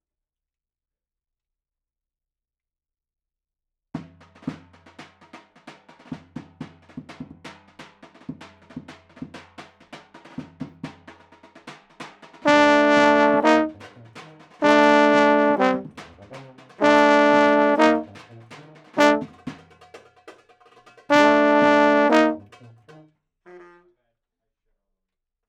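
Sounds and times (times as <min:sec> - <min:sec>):
euphoniums playing: 0:12.5 - 0:13.8, 0:14.6 - 0:15.9, 0:16.8 - 0:18.1, 0:19.0 - 0:19.3, 0:21.1 - 0:22.4.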